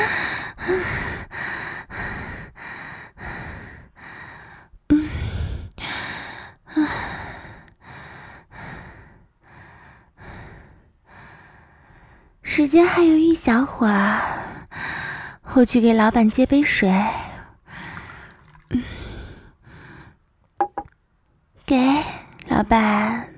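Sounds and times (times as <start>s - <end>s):
heavy panting breaths: 0.0s - 12.4s, 14.1s - 15.4s
speech: 12.7s - 14.4s, 15.6s - 17.2s, 22.7s - 23.0s.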